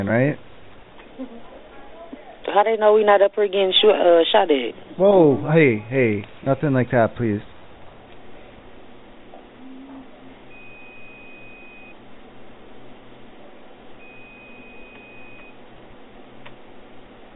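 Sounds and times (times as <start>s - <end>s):
speech: 0.0s - 0.5s, 1.2s - 1.5s, 2.6s - 7.5s
constant low hum of noise: 0.0s - 17.3s
phone giving long steady electronic beeps: 10.5s - 12.0s, 14.0s - 15.6s.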